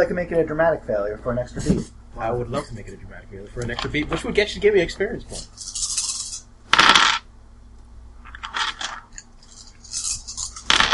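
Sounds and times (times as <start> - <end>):
speech: 0.0 - 5.9
clattering like dice tumbling across a hard table: 6.7 - 7.2, 8.3 - 9.2, 9.9 - 10.9.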